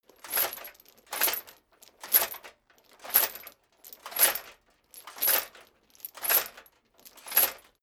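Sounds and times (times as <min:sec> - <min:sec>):
metal chain moving on a plate: 0:00.0 - 0:07.8.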